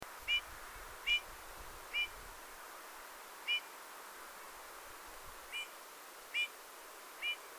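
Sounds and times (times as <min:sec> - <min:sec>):
hiss: 0:00.0 - 0:07.5
Eurasian bullfinch Pyrrhula pyrrhula giving soft piping whistled calls: 0:00.3 - 0:01.3, 0:01.9 - 0:02.2, 0:03.5 - 0:03.7, 0:05.5 - 0:05.7, 0:06.3 - 0:06.5, 0:07.2 - 0:07.4.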